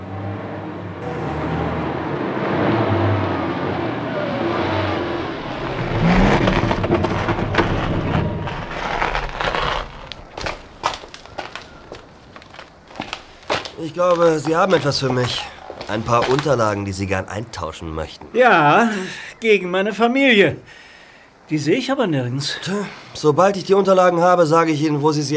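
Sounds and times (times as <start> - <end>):
vehicle engine rumble approaching and stopping on a beach: 0.5 - 13.7
speech: 14.0 - 20.8, 21.5 - 25.3.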